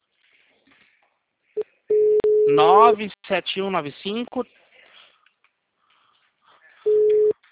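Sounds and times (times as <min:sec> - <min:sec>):
telephone tone after a dropped call: 0:01.9 - 0:02.6, 0:06.9 - 0:07.4
speech: 0:02.5 - 0:04.6.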